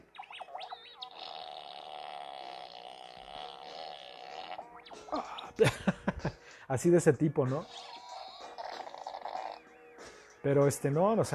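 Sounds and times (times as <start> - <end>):
electronic fart sound from a fart robot toy: 0.1 - 5.1, 7.6 - 9.7
laughter: 5.1 - 6.4
speech: 5.1 - 7.8, 10.4 - 11.3.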